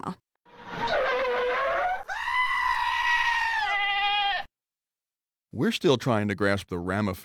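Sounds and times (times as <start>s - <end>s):
speech: 0.0s - 0.2s, 5.6s - 7.2s
goat bleating: 1.6s - 4.5s.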